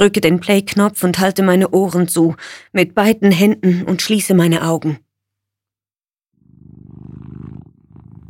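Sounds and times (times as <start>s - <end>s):
speech: 0.0s - 5.0s
cat purring: 6.4s - 8.2s.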